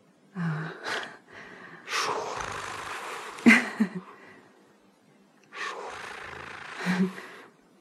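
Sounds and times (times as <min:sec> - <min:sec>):
person breathing heavily with raspy gasping inhales and exhales: 0:00.4 - 0:04.6, 0:05.6 - 0:07.6.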